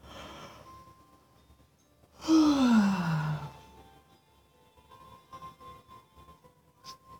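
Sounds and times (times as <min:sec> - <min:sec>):
long yawn with deep breathy inhalation during a relaxation exercise: 0:02.2 - 0:03.6.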